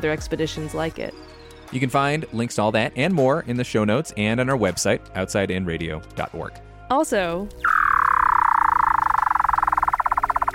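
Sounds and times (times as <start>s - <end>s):
speech: 0.0s - 7.7s
Weddell seal vocalization in Antarctica: 7.6s - 10.5s.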